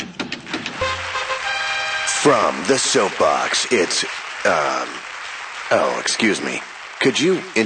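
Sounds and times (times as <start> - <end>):
prize wheel spinning with sharp ticking clicks: 0.5 - 4.8
short tonal buzz: 0.8 - 2.5
speech: 2.2 - 5.0, 5.7 - 7.6.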